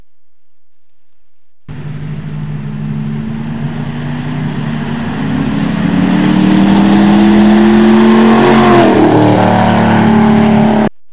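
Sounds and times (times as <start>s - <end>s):
Mustang driving by fast: 1.7s - 10.9s.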